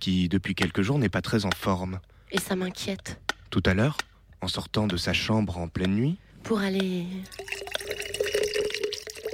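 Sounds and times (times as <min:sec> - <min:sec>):
speech: 0:00.0 - 0:07.7
stream of liquid trickling and splashing: 0:07.2 - 0:09.3.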